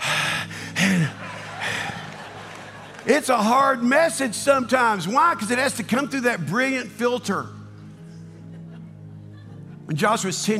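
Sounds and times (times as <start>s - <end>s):
heavy gasping breathing: 0.0s - 2.1s
laughter: 0.8s - 3.9s, 8.2s - 10.5s
speech: 3.1s - 7.6s, 9.9s - 10.5s.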